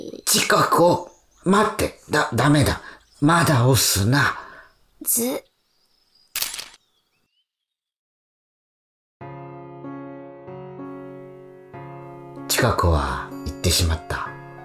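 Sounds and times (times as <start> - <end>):
speech: 0.4 - 4.4, 5.0 - 5.5, 12.6 - 14.3
camera shutter click: 6.3 - 6.8
soft sustained music: 9.2 - 14.6.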